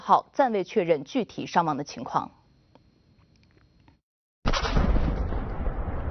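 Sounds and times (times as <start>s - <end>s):
speech: 0.1s - 2.4s
fertilizer warehouse explosion: 4.5s - 6.0s.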